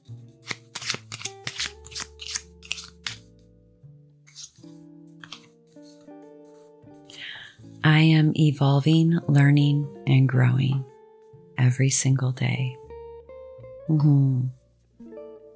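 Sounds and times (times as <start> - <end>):
soft steady music with sustained tones: 0.0 - 15.5
deck of affirmation cards being shuffled: 0.4 - 3.3, 4.3 - 6.0
speech: 7.9 - 10.9, 11.6 - 12.8, 13.9 - 14.6.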